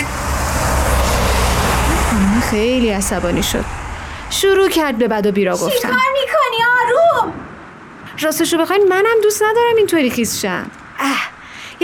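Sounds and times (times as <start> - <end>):
car speeding past on a wet road splashing water: 0.0 - 5.6
speech: 2.5 - 6.2, 8.2 - 11.8.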